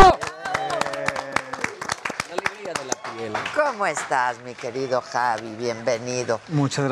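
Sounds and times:
hand clapping from a few people: 0.0 - 4.2
speech: 3.7 - 6.8.

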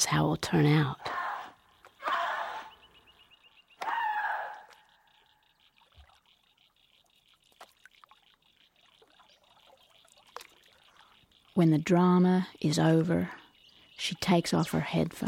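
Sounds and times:
speech: 0.0 - 1.1, 11.6 - 13.4, 14.0 - 15.2
soft outdoor ambience: 0.0 - 15.2
water dripping: 0.0 - 15.2
water struck with a stick: 10.0 - 10.8.

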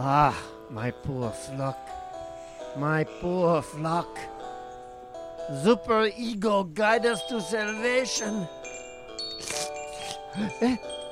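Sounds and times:
speech: 0.0 - 2.0, 2.8 - 4.4, 5.5 - 8.8, 10.3 - 11.0
small bell jingling in quick shakes: 7.0 - 11.0.

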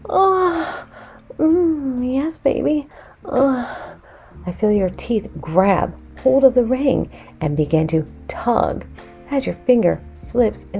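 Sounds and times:
woman gasping: 0.1 - 1.4, 2.9 - 4.4
speech: 0.1 - 1.7, 2.4 - 3.8, 4.4 - 10.7.

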